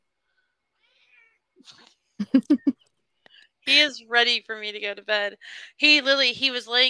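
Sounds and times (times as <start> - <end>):
male cat meowing: 0.8 - 1.4
speech: 1.6 - 2.7, 3.7 - 6.8.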